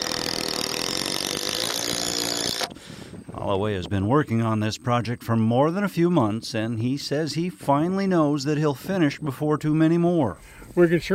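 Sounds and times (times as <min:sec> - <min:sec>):
cordless power drill driving a screw through a heavy board into a corral post: 0:00.0 - 0:02.8
speech: 0:03.5 - 0:11.1.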